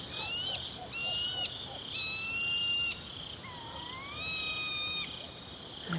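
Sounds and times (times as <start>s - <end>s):
tawny owl hooting territorial call at woodland edge by open meadow: 0.0s - 5.4s.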